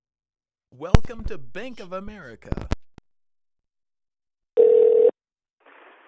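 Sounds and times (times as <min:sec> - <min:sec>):
speech: 0:00.8 - 0:02.8
phone line electronic ringing tone after dialing: 0:04.6 - 0:05.2.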